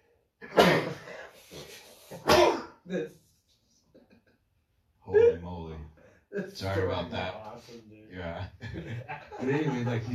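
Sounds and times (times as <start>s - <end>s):
single loud sneeze: 0.4s - 3.0s
speech: 2.3s - 3.2s, 6.4s - 10.1s
laughter: 8.4s - 10.1s.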